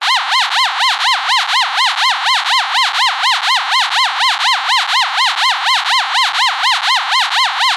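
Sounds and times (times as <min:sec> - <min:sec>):
small plasticky science fiction alarm siren: 0:00.0 - 0:07.7.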